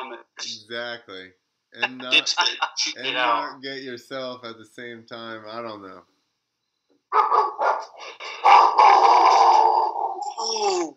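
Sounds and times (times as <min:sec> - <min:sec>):
speech: 0:00.4 - 0:06.1, 0:07.1 - 0:08.2, 0:10.4 - 0:10.9
dog barking: 0:07.1 - 0:09.2
dog yelping: 0:07.1 - 0:09.8.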